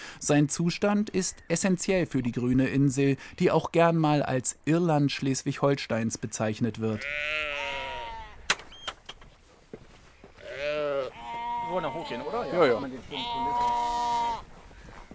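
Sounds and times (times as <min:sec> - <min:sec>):
speech: 0:00.2 - 0:07.8, 0:11.7 - 0:13.8
sheep bleating: 0:07.0 - 0:08.4, 0:10.4 - 0:14.5.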